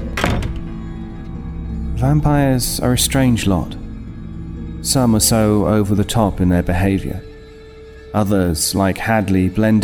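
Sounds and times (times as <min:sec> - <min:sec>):
door shutting with a thunk: 0:00.1 - 0:00.7
speech: 0:02.0 - 0:03.8, 0:04.9 - 0:07.3, 0:08.1 - 0:09.8.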